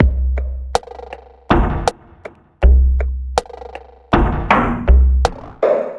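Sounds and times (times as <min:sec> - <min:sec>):
downtempo drum machine beat: 0:00.0 - 0:05.9.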